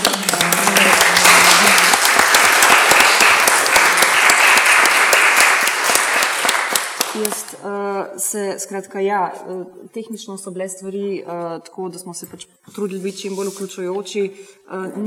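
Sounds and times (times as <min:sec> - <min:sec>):
audience applause at a panel discussion event: 0:00.0 - 0:07.5
speech: 0:08.3 - 0:15.0.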